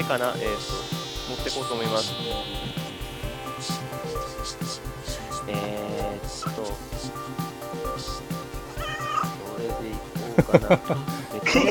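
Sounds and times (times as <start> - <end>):
speech: 0.0 - 2.8, 3.6 - 8.3, 9.2 - 11.6
pet cat meowing at home: 8.8 - 9.3
laughter: 10.4 - 11.6.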